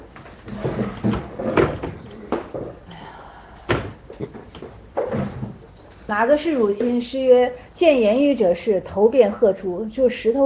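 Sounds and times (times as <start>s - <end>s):
wooden chair knocks and bumps as someone switches chairs: 0.2s - 2.8s, 3.7s - 5.6s
speech: 6.1s - 10.4s.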